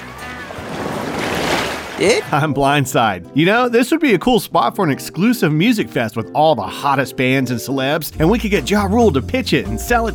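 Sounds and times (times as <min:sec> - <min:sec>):
surf from an incoming tide rushing: 0:00.0 - 0:02.4
speech: 0:02.0 - 0:10.1.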